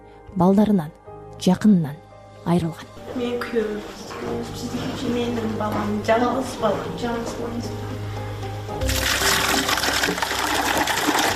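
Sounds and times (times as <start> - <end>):
speech: 0.3 - 8.1
water poured by hand into buckets for household use: 8.8 - 11.3.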